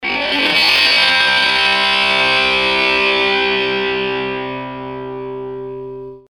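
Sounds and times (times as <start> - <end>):
fuzz guitar effect: 0.0 - 6.2.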